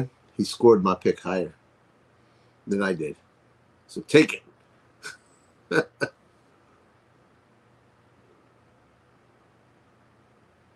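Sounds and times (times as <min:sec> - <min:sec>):
speech: 0:00.0 - 0:01.6, 0:02.7 - 0:03.2, 0:03.9 - 0:06.2
person coughing: 0:05.0 - 0:06.1.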